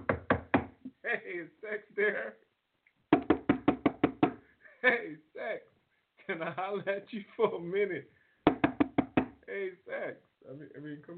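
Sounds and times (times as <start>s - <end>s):
sharp rapid knocking on a door: 0.0s - 0.8s, 3.1s - 4.4s, 8.4s - 9.4s
speech: 1.1s - 2.5s, 4.8s - 5.7s, 6.3s - 8.2s, 9.5s - 11.1s.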